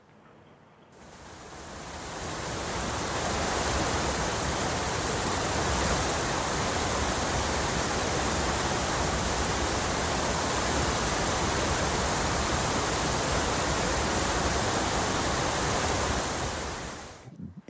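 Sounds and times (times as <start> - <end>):
waterfall roaring: 1.0 - 17.6.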